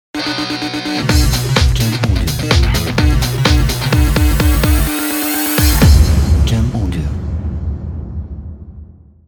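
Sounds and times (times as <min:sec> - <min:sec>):
energetic rock music logo jingle: 0:00.2 - 0:09.2.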